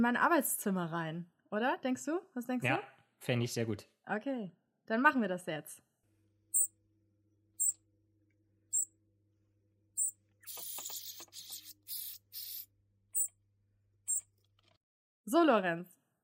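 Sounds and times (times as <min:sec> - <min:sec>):
speech: 0:00.0 - 0:05.9, 0:15.3 - 0:16.0
small pet bird chirping in a study room: 0:06.5 - 0:06.8, 0:07.6 - 0:07.8, 0:08.7 - 0:09.0, 0:09.9 - 0:13.4, 0:14.0 - 0:14.3.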